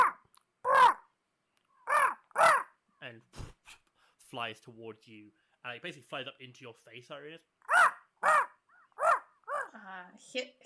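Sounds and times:
raven cawing from a wooden beam above a door: 0.0s - 1.1s, 1.8s - 2.8s, 7.6s - 9.7s
speech: 3.1s - 7.5s, 9.9s - 10.6s.

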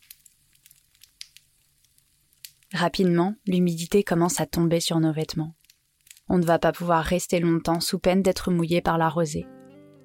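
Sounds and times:
burning campfire logs crackling, popping and hissing: 0.0s - 4.3s, 5.4s - 6.7s
speech: 2.7s - 5.6s, 6.3s - 9.6s.

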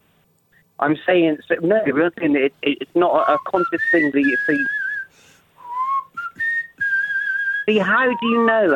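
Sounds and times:
speech: 0.8s - 4.8s, 7.7s - 8.7s
person whistling a short melodic phrase: 3.2s - 8.7s.

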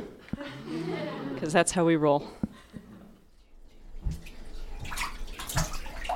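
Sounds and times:
laughter: 0.0s - 1.5s
speech: 1.4s - 2.5s
bath water splashing as a baby is bathed: 3.6s - 6.1s.

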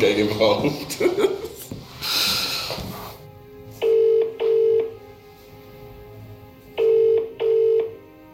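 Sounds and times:
speech: 0.0s - 1.2s
laughter: 0.5s - 1.7s
double-pulse ringback tone of outgoing call: 3.8s - 5.0s, 6.8s - 8.0s.

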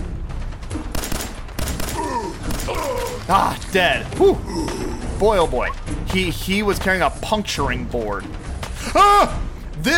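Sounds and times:
video game sound: 0.0s - 9.9s
pistol gunfire in a video game: 0.8s - 3.3s
speech: 3.3s - 9.9s.

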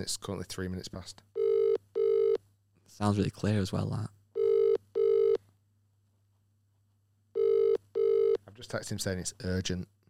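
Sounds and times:
speech: 0.0s - 1.3s, 3.0s - 4.2s, 8.6s - 10.0s
telephone ringback tone on an outgoing call: 1.4s - 2.4s, 4.4s - 5.4s, 7.4s - 8.4s.

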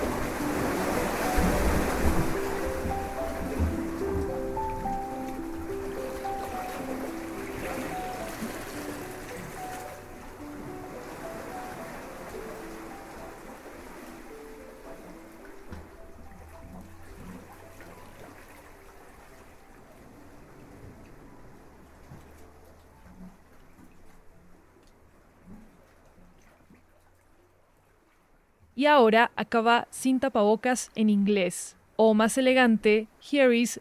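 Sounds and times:
ocean waves surging and receding: 0.0s - 26.4s
speech: 28.8s - 33.7s.

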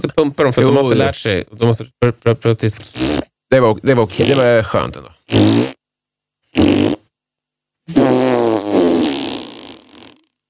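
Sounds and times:
speech: 0.0s - 5.8s
loud buzzy fart: 2.8s - 3.3s, 5.3s - 5.8s, 6.5s - 7.1s, 7.9s - 10.4s.

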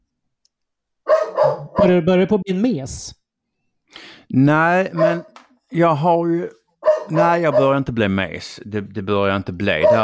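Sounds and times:
dog barking: 1.1s - 2.0s, 4.9s - 5.4s, 6.8s - 7.8s, 9.8s - 10.0s
speech: 1.4s - 3.2s, 3.9s - 10.0s.

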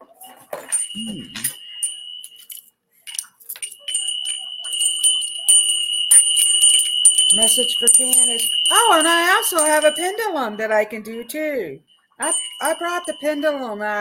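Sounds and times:
small hand bells ringing: 0.2s - 13.9s
speech: 1.0s - 1.6s, 7.3s - 13.9s.

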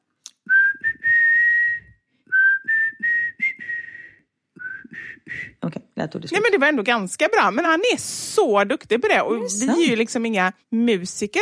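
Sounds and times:
person whistling a slow tuneful melody: 0.4s - 5.6s
speech: 5.3s - 11.4s.

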